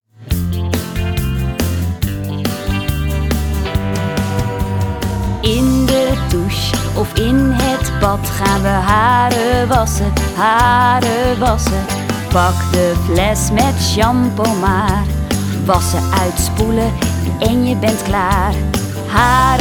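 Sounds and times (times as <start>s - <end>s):
children's song about washing hair: 0.5s - 19.5s.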